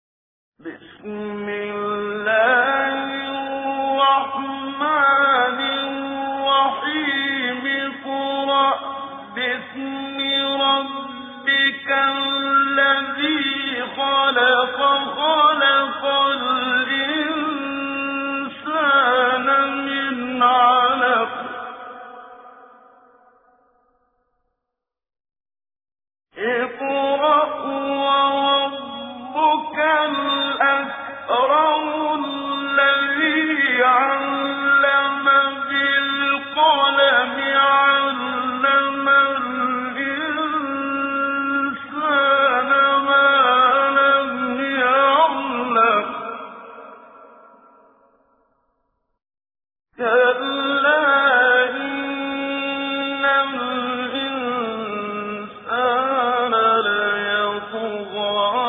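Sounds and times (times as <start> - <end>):
tajwid Quran recitation: 0.6 - 23.5, 26.3 - 48.0, 50.0 - 58.6.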